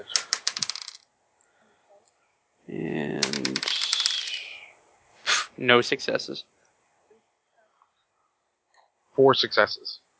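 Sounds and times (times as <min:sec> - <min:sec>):
dice clattering on table: 0:00.0 - 0:01.1, 0:03.2 - 0:04.5
speech: 0:05.6 - 0:06.6, 0:09.2 - 0:10.0.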